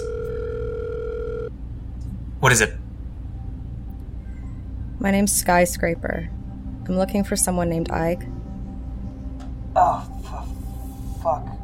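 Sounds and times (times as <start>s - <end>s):
steady electronic telephone ringback tone: 0.0s - 1.5s
low hum: 0.0s - 11.6s
speech: 2.4s - 2.8s, 5.0s - 8.4s.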